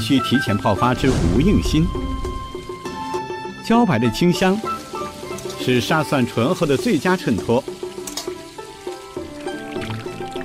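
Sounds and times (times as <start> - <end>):
speech: 0.0 - 2.4, 3.7 - 4.8, 5.6 - 7.8
broth pouring into a pot: 4.6 - 10.4.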